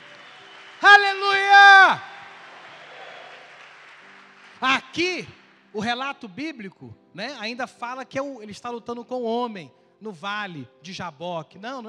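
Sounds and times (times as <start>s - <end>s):
large crowd applauding: 0.0s - 6.0s
speech: 5.0s - 11.8s.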